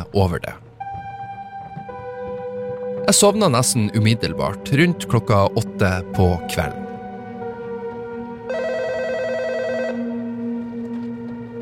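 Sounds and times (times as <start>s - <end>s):
speech: 0.0s - 0.6s, 3.1s - 6.8s
hotel room telephone ringing with a bright electronic trill: 8.5s - 10.2s.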